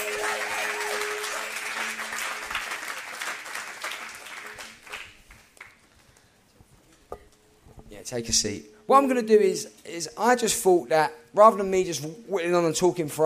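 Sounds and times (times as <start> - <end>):
audience applause: 0.0 - 5.8
speech: 8.0 - 13.2.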